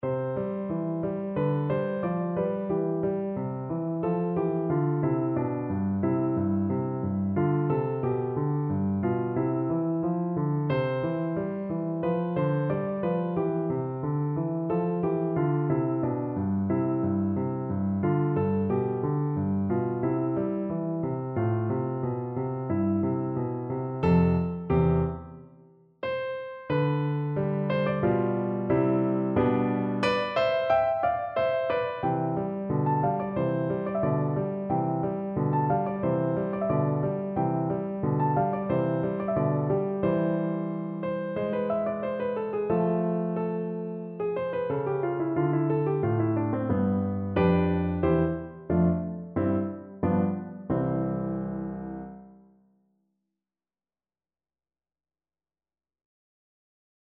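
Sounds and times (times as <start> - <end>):
piano piece: 0.0 - 52.6.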